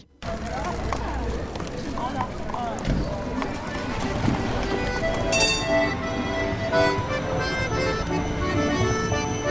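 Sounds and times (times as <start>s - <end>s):
people talking in a busy outdoor crowd: 0.0s - 5.9s
horse hooves clip-clopping on pavement in Bern, Switzerland: 0.2s - 9.1s
accompanying music: 4.2s - 9.4s.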